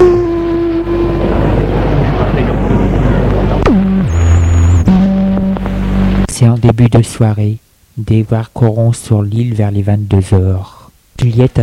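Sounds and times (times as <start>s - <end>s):
deep boat horn blasts as the boat departs: 0.0s - 6.3s
steady low boat engine rumble: 0.0s - 7.6s
speech: 6.7s - 11.6s.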